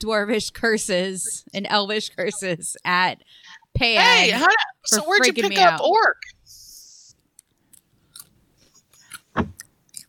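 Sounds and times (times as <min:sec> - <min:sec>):
speech: 0:00.0 - 0:06.6, 0:09.4 - 0:09.6
chewing crunchy snacks: 0:07.4 - 0:10.0.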